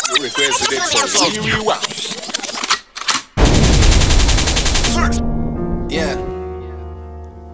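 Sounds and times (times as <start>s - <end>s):
speech: 0.2s - 2.4s
rapid gunshots like automatic fire: 3.4s - 6.3s.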